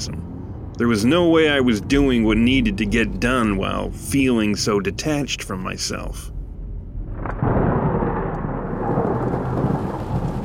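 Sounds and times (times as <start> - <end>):
speech: 0.8 - 6.3
deep rumbling low tones: 1.5 - 10.4
heavy rainstorm downpour over a narrow dirt road: 7.4 - 10.4.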